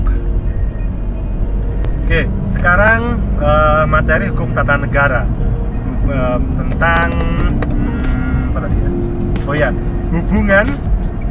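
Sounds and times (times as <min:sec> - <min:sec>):
engine and road noise heard from inside a moving car: 0:00.0 - 0:11.2
speech: 0:02.1 - 0:07.6, 0:08.6 - 0:10.9.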